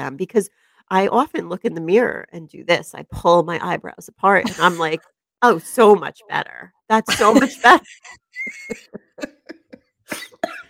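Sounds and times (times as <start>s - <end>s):
speech: 0.0s - 9.4s
laughter: 4.4s - 5.0s, 7.1s - 10.3s
harsh raspy coughing fit: 8.8s - 10.6s.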